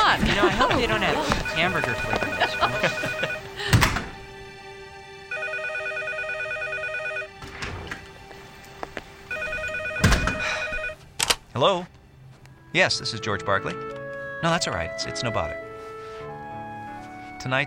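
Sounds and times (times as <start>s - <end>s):
laughter: 0.0s - 3.8s
speech: 0.1s - 3.4s, 11.6s - 12.0s, 12.7s - 15.6s, 17.4s - 17.6s
telephone ringing: 0.5s - 3.5s, 5.3s - 7.4s, 9.3s - 11.0s.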